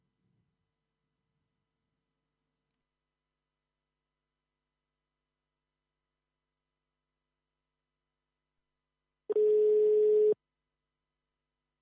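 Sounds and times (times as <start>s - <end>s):
telephone tone on a line being called back: 9.3s - 10.4s.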